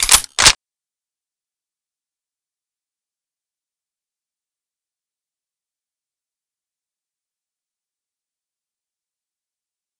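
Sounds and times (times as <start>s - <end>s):
weapon clip inserted: 0.0s - 0.6s.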